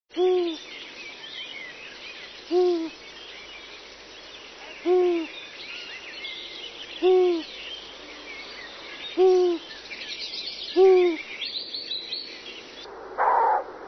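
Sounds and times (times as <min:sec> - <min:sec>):
Asio otus owl: 0:02.5 - 0:03.0, 0:04.6 - 0:05.3, 0:07.0 - 0:07.5, 0:09.1 - 0:09.6, 0:10.8 - 0:11.3, 0:13.2 - 0:13.7.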